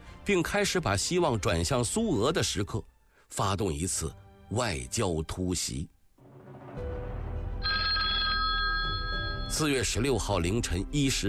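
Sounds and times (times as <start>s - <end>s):
speech: 0.3s - 6.0s, 9.5s - 11.2s
telephone bell ringing: 7.6s - 9.9s.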